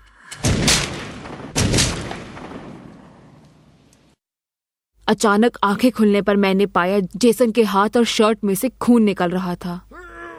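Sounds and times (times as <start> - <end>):
loud booming gunshots with long decay: 0.4 - 3.8
speech: 5.1 - 10.0.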